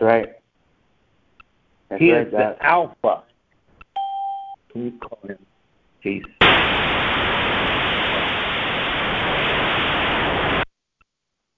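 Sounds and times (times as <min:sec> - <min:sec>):
speech: 0:00.0 - 0:00.4, 0:01.9 - 0:03.3, 0:04.8 - 0:06.7
harsh static hiss on the line: 0:06.0 - 0:10.7.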